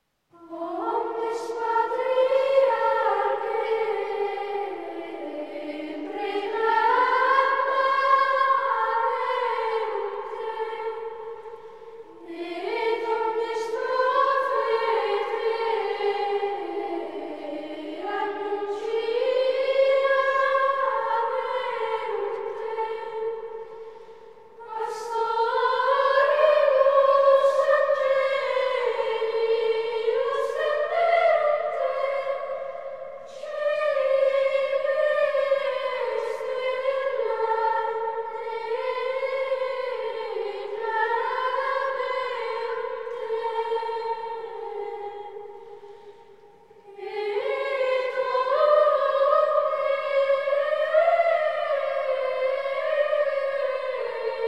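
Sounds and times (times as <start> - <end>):
choir chanting an Ambrosian antiphon: 0.0 - 54.4.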